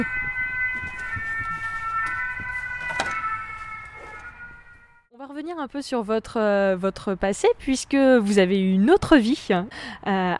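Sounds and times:
city siren wailing: 0.0 - 5.1
speech: 5.5 - 10.3.

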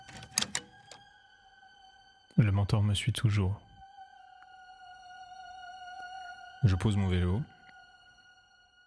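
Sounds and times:
small cellar door latch clicks: 0.0 - 1.1
speech: 2.4 - 3.7, 6.6 - 7.5.

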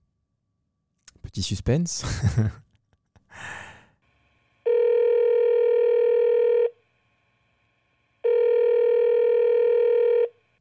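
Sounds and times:
speech: 1.4 - 2.7
laughter: 2.0 - 2.8
short breath: 3.3 - 4.0
ringback tone of a phone call being placed: 4.6 - 6.8, 8.2 - 10.6.

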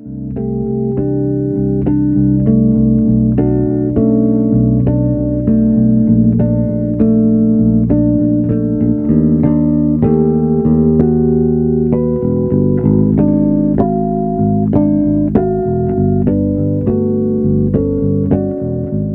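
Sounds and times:
solo electric bass guitar playing with harmonics: 0.0 - 19.1.

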